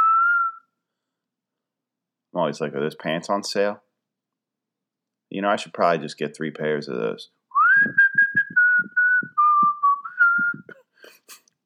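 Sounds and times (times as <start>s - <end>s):
person whistling a tune: 0.0s - 0.7s, 7.6s - 10.8s
speech: 2.4s - 3.8s, 5.3s - 8.0s.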